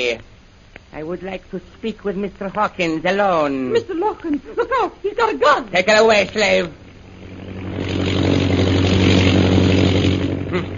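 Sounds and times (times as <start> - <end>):
speech: 0.0 - 7.3
British propeller plane droning overhead: 3.7 - 10.7.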